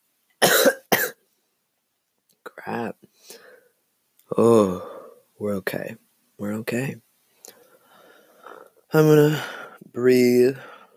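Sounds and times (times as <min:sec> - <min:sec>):
harsh coughing fit: 0:00.4 - 0:01.2
speech: 0:02.6 - 0:03.5, 0:04.3 - 0:07.0, 0:08.9 - 0:10.7.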